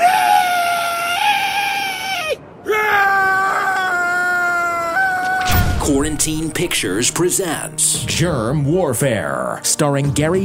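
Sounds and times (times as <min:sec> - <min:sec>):
person shrieking high-pitched: 0:00.0 - 0:05.6
speech: 0:05.9 - 0:10.4.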